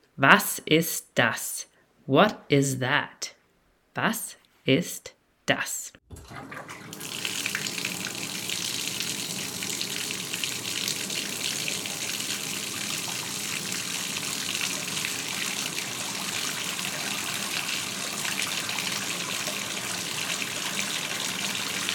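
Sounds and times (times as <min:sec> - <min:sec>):
speech: 0:00.2 - 0:03.4, 0:04.0 - 0:07.0
water running from a tap: 0:06.1 - 0:21.9.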